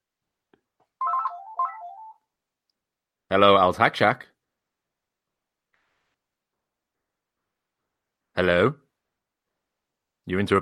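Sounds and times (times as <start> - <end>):
landline telephone ringing with a warbling electronic trill: 1.0 - 2.2
speech: 3.3 - 4.3, 8.4 - 8.8, 10.3 - 10.6.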